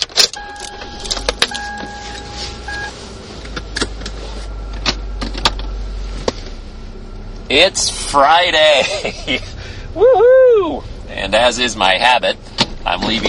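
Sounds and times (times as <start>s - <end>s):
car engine and road rumble while driving: 0.0s - 13.2s
sustained electronic beeping tones: 0.4s - 3.0s
speech: 7.5s - 13.2s.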